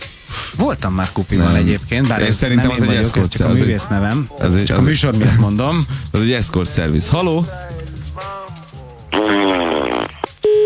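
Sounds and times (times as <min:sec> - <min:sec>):
speech: 0:00.6 - 0:07.8
fart blown into a telephone receiver over a phone line: 0:09.1 - 0:10.3.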